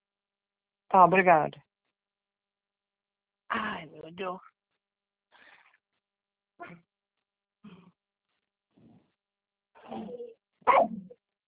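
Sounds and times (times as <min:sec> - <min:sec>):
speech: 0:00.9 - 0:01.6, 0:03.5 - 0:04.5, 0:09.9 - 0:11.0
dog giving short sharp barks or yips: 0:10.7 - 0:11.1.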